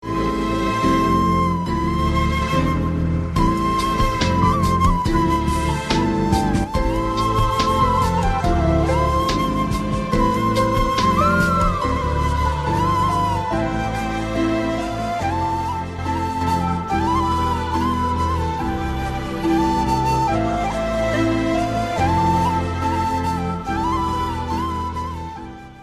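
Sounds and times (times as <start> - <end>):
flute music: 0.0 - 25.8.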